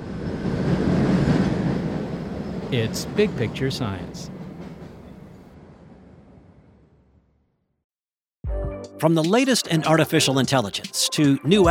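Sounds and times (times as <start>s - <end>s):
Boston subway train rumbling into a T station: 0.0s - 7.4s
speech: 2.7s - 4.4s, 9.0s - 11.6s.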